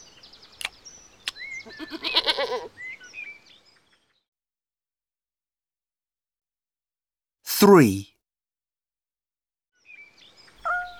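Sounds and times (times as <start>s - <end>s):
goat bleating: 1.7s - 2.7s
speech: 1.8s - 2.8s, 7.6s - 8.1s.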